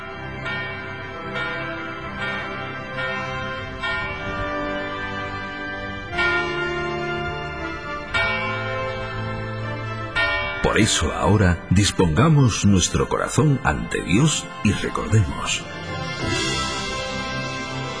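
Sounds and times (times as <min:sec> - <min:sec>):
church bell ringing the hour: 0:00.0 - 0:17.9
speech: 0:10.8 - 0:16.4.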